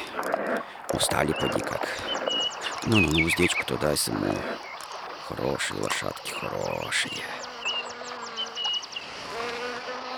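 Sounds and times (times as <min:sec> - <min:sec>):
speech: 0:01.0 - 0:02.2, 0:02.8 - 0:04.6, 0:05.3 - 0:07.5
fly buzzing near horses: 0:06.4 - 0:10.1.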